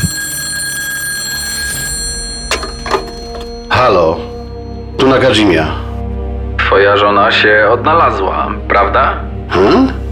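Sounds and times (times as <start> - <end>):
telephone ringing with trilling bell: 0.0 - 4.9
speech: 5.1 - 5.8, 6.7 - 10.0.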